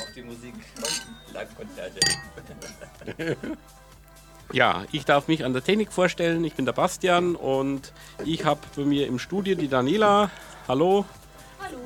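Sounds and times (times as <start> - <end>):
glasses clinking in a toast: 0.0 - 3.0
speech: 0.2 - 3.9, 4.5 - 11.8
laughter: 1.6 - 3.6.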